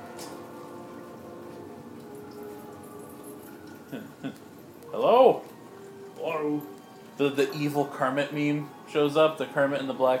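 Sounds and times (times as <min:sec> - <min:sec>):
water dripping onto an Aston Martin car body: 0:01.6 - 0:06.8
speech: 0:07.2 - 0:10.1.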